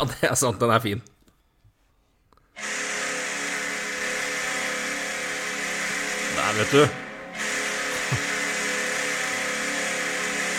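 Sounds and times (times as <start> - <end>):
speech: 0.0 - 1.1, 6.5 - 7.0, 8.1 - 8.3
ice hockey goal horn blaring: 2.6 - 10.5
roaring wash of crowd noise: 5.5 - 10.5
laughter: 7.9 - 8.3.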